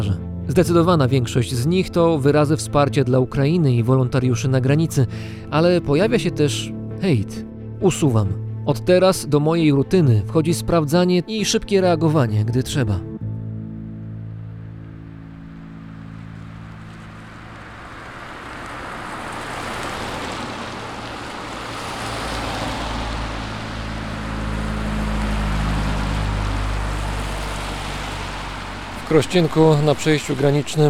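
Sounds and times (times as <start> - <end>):
broad road noise: 0.0 - 30.8
speech: 0.5 - 13.1, 29.1 - 30.8
cars passing at the Polish-Ukrainian border crossing in Krościenko on a freezing night: 13.2 - 30.8.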